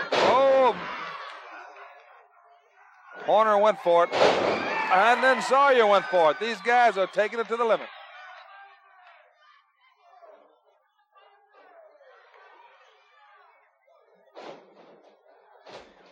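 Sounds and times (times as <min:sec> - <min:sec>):
crowd chatter and cheering: 0:00.0 - 0:16.1
speech: 0:03.3 - 0:08.0
impact thud: 0:04.1 - 0:04.7
professional wrestler power slammed onto the wrestling mat: 0:04.1 - 0:04.7.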